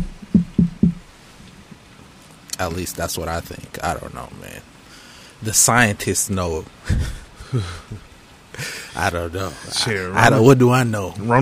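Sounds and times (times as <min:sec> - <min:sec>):
knocking on wood: 0:00.0 - 0:01.0
speech: 0:02.6 - 0:04.8, 0:05.4 - 0:08.0, 0:08.6 - 0:11.4.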